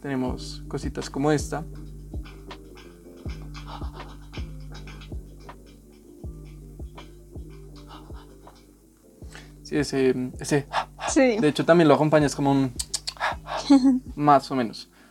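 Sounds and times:
speech: 0.0s - 1.9s, 9.7s - 12.8s, 13.7s - 15.1s
steady sustained music: 0.0s - 15.1s
rhythmic pant-like breaths in a song: 1.6s - 9.7s, 10.6s - 11.5s, 12.8s - 13.9s, 14.8s - 15.1s
laughter: 3.4s - 5.0s.

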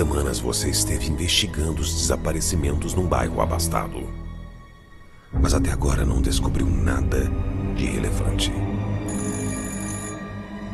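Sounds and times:
speech: 0.1s - 4.2s, 5.3s - 9.2s
telephone ringing with a bright shrill trill: 9.0s - 10.4s.

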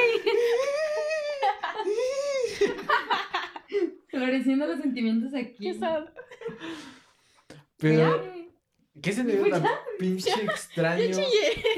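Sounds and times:
person with high wavering voice sobbing and laughing: 0.2s - 2.9s
speech: 4.2s - 6.9s, 7.8s - 8.4s, 9.0s - 11.7s.

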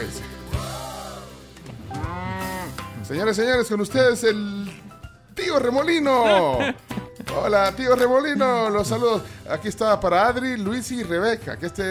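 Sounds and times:
cow mooing: 1.9s - 2.9s
speech: 3.1s - 4.8s, 5.5s - 11.8s
laughter: 6.1s - 7.6s.

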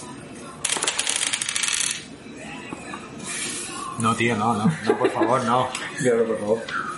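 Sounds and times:
two dice rolling on a hard tabletop: 0.7s - 2.1s
speech: 4.0s - 6.9s
laughter: 4.6s - 5.8s.

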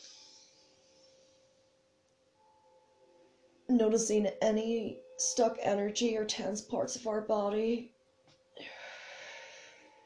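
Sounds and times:
speech: 3.7s - 7.9s
deep inhale through the nose in a guided breathing exercise: 8.7s - 10.0s.

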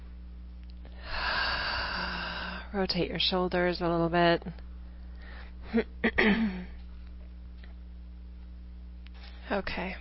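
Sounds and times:
deep breath during a guided relaxation exercise: 0.9s - 2.7s
speech: 2.7s - 4.7s, 5.7s - 6.8s, 9.5s - 9.9s.

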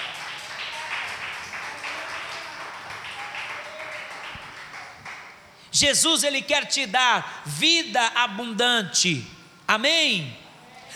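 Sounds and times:
large crowd applauding: 0.0s - 5.6s
speech: 5.8s - 10.4s.

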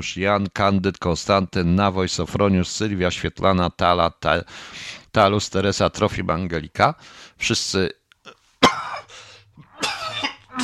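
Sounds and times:
speech: 0.0s - 8.0s
person clearing throat with something stuck in it: 8.3s - 10.6s
person coughing with something stuck in the throat: 8.6s - 10.6s.

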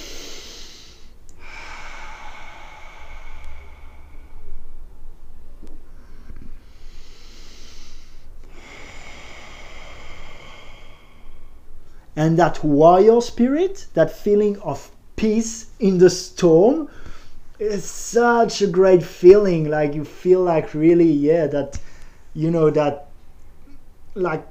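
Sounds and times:
slow deep breathing: 0.0s - 12.2s, 16.8s - 17.6s, 21.8s - 22.4s
speech: 12.2s - 17.0s, 17.6s - 23.0s, 24.2s - 24.4s.

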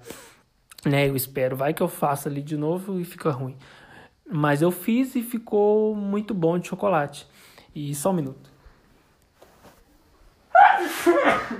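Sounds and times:
speech: 0.8s - 8.5s
loud sneeze: 10.5s - 11.5s.

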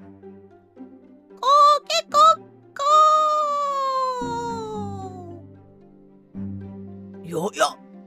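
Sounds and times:
human voice imitating a rooster's crow at dawn: 1.4s - 5.4s.

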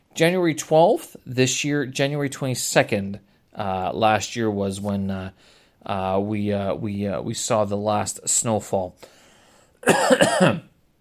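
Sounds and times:
speech: 0.2s - 9.2s, 9.8s - 10.7s
raspy cough: 9.8s - 10.7s.

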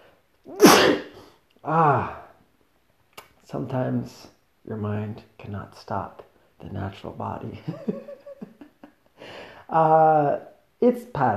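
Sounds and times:
speech: 0.4s - 1.0s, 1.6s - 2.2s, 3.5s - 8.2s, 9.7s - 11.3s
loud sneeze: 0.5s - 1.2s.

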